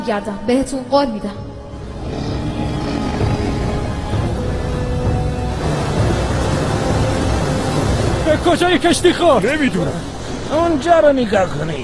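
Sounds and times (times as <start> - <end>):
speech: 0.0 - 2.2, 8.3 - 11.8
loud raging storm roaring: 1.7 - 9.0.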